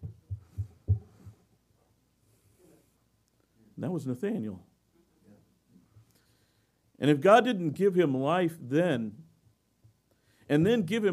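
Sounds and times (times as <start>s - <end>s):
low heartbeat thumping: 0.0s - 1.4s
speech: 3.8s - 4.7s, 7.0s - 9.2s, 10.5s - 11.1s.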